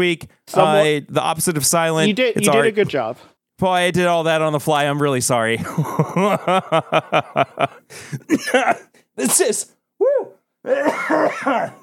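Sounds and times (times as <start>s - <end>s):
speech: 0.0s - 11.8s
laughter: 5.6s - 8.9s
person coughing chesty coughs: 8.2s - 8.9s, 10.7s - 11.8s.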